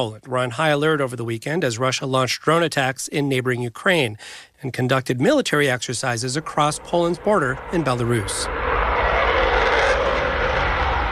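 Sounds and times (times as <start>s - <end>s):
speech: 0.0s - 8.6s
French Strategic Air Force fighter jet flying over Polish airspace: 5.9s - 11.1s.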